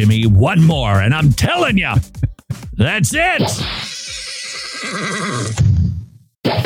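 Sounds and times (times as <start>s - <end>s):
speech: 0.0s - 2.2s, 2.8s - 3.9s, 4.8s - 5.6s
horse whinny trailing into a snort: 3.7s - 5.6s.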